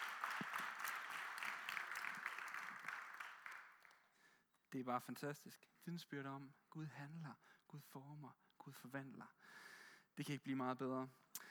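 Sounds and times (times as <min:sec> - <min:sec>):
audience applauding: 0:00.0 - 0:04.0
speech: 0:04.7 - 0:11.2.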